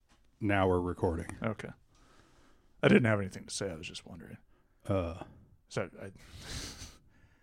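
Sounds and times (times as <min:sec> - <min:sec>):
speech: 0:00.4 - 0:01.8, 0:02.8 - 0:06.8
heavy breathing and panting after a bike ride: 0:02.0 - 0:02.8, 0:06.2 - 0:07.4.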